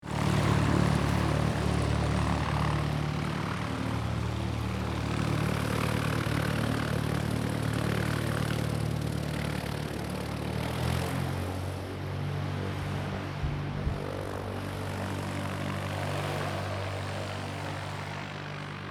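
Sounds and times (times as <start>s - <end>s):
distant light aircraft taking off: 0.0s - 18.8s.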